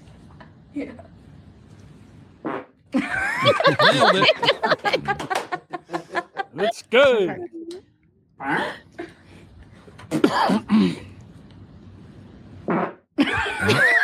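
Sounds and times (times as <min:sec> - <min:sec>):
speech: 0:00.7 - 0:01.2, 0:03.0 - 0:05.5, 0:06.6 - 0:07.6, 0:08.4 - 0:08.8, 0:10.3 - 0:11.0
loud sputtering farts: 0:02.4 - 0:02.8, 0:12.6 - 0:13.1
laughter: 0:03.0 - 0:06.8, 0:13.2 - 0:14.0.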